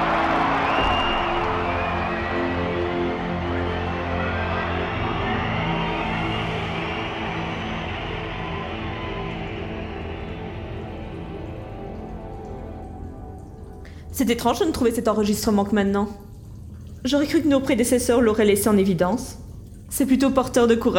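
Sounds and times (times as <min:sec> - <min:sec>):
large crowd applauding: 0:00.0 - 0:11.8
speech: 0:14.2 - 0:16.2, 0:17.0 - 0:20.9.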